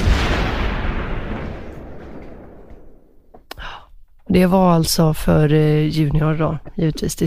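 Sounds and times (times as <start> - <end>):
heavy cannon boom: 0.0 - 3.5
faint sharp crack: 0.0 - 3.6
speech: 4.3 - 7.2.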